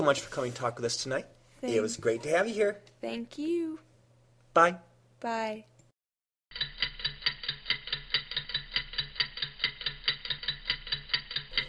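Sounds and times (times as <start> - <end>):
speech: 0.0 - 3.9, 4.6 - 5.7
clock ticking: 6.5 - 11.6.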